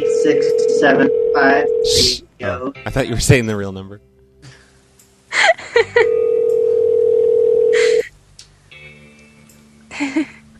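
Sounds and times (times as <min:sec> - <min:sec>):
telephone line tone: 0:00.0 - 0:01.9, 0:06.0 - 0:08.0
speech: 0:00.0 - 0:04.1.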